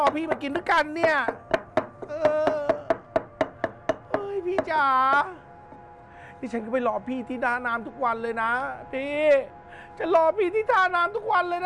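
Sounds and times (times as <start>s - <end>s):
speech: 0.0s - 1.5s, 4.5s - 5.5s, 6.4s - 11.6s
pestle pounding chili paste in a mortar: 0.0s - 4.8s.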